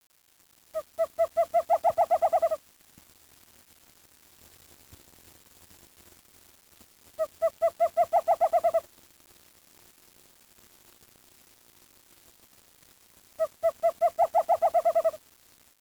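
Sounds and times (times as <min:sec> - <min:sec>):
bird call in short bursts of rapid pulsed notes: 0:00.8 - 0:02.6, 0:07.2 - 0:08.8, 0:13.4 - 0:15.2.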